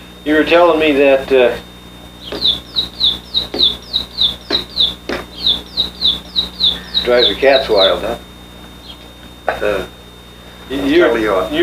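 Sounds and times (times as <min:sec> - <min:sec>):
speech: 0:00.2 - 0:01.7, 0:02.3 - 0:04.1, 0:05.5 - 0:08.3, 0:09.5 - 0:10.0, 0:10.7 - 0:11.6
sparrow chirping through an open window: 0:02.2 - 0:09.2
faint high steady tone: 0:02.2 - 0:09.9.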